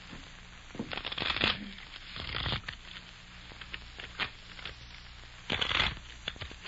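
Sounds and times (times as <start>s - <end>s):
deck of playing cards being shuffled: 0.8s - 4.8s, 5.5s - 6.6s.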